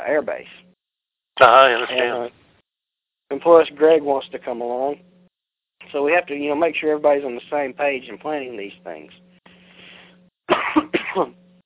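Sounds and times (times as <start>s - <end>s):
speech: 0.1s - 0.6s, 1.4s - 2.4s, 3.3s - 5.1s, 5.8s - 9.2s, 10.8s - 11.4s
person coughing, held back: 10.5s - 11.4s.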